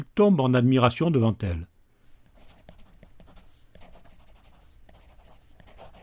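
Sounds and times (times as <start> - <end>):
speech: 0.1 - 1.7
pen writing a note on paper: 2.2 - 6.0.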